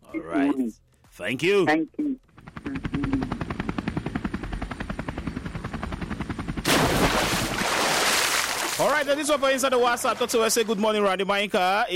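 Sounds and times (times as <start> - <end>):
speech: 0.1 - 2.2, 8.8 - 11.9
helicopter rotor thudding: 2.3 - 7.6.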